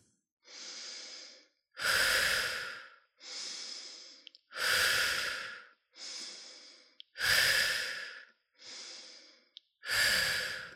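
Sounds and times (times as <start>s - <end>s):
deep rhythmic breathing during a guided breathing exercise: 0.0s - 10.7s.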